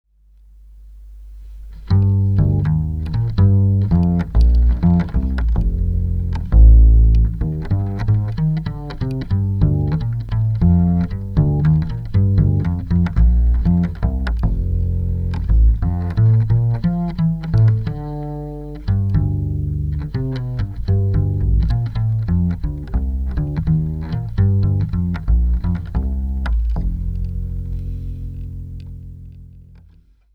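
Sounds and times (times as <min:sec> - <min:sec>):
Stico electric upright bass: 0:01.1 - 0:30.2.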